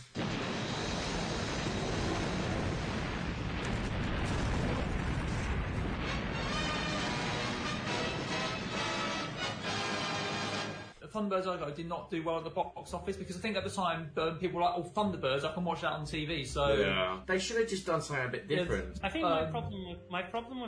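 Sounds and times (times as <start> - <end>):
explosion sound effect: 0.0 - 11.0
speech: 11.1 - 20.6.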